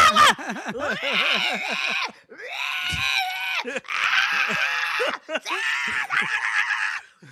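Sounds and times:
laughter: 0.0s - 2.3s, 3.4s - 6.5s
voice imitating a little kid screaming like sirens: 0.0s - 7.0s
short breaths: 7.2s - 7.3s.

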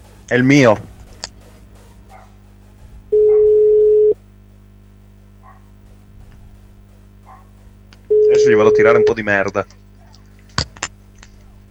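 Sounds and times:
low hum: 0.0s - 11.6s
speech: 0.3s - 0.9s, 8.5s - 9.8s
dog barking: 1.8s - 2.4s, 3.2s - 3.5s, 5.4s - 5.8s, 7.2s - 7.6s, 10.0s - 10.2s
telephone ringing tone as a phone call is placed: 3.1s - 4.2s, 8.1s - 9.3s.

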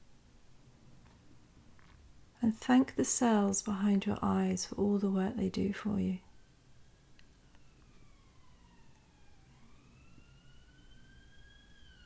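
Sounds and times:
steady noise: 0.0s - 12.0s
speech: 2.4s - 6.2s
distant emergency vehicle siren: 6.2s - 12.0s.

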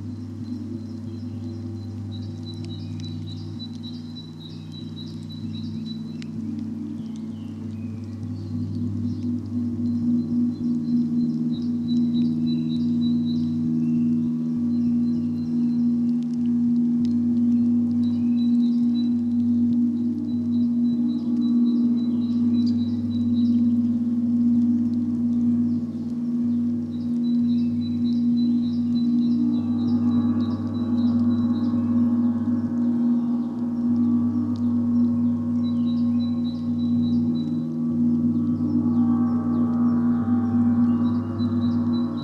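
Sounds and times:
faint bird chirps: 0.0s - 42.2s
singing bowls humming in a layered low drone: 0.0s - 42.2s.

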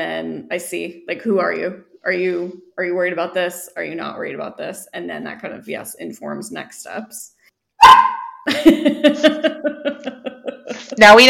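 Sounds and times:
speech: 0.0s - 10.2s, 10.9s - 11.2s
dog barking: 7.8s - 8.4s
laughter: 8.5s - 11.1s.

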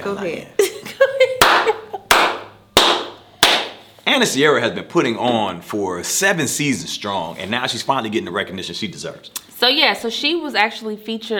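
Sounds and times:
speech: 0.0s - 0.6s, 4.1s - 11.3s
laughter: 0.6s - 2.2s
loud sharp hand claps: 1.4s - 3.8s.

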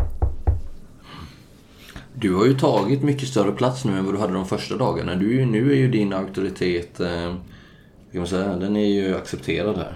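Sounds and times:
knocks on a wooden table: 0.0s - 0.8s
speech: 2.2s - 9.9s.

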